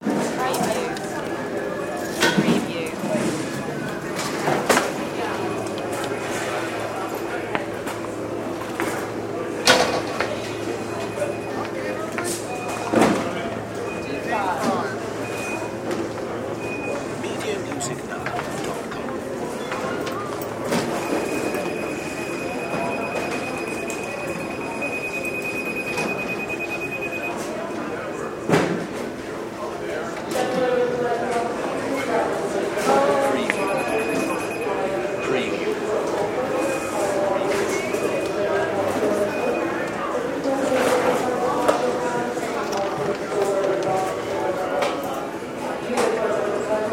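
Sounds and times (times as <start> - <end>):
airport security ambience: 0.0 - 46.9.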